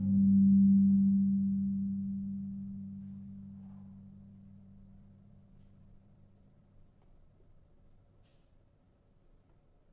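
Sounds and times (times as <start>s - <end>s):
gamelan-tuned gong in G sharp: 0.0s - 5.1s.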